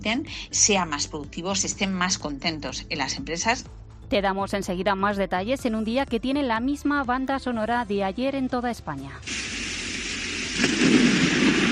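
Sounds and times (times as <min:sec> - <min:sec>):
speech: 0:00.0 - 0:09.5
rain in a thunderstorm with hail: 0:09.2 - 0:11.7
low thunder rumble: 0:09.3 - 0:11.7.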